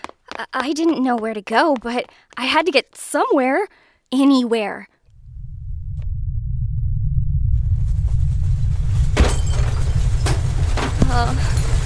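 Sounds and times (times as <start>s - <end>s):
speech: 0.4s - 4.9s, 11.1s - 11.5s
deep continuous rumble: 5.1s - 11.8s.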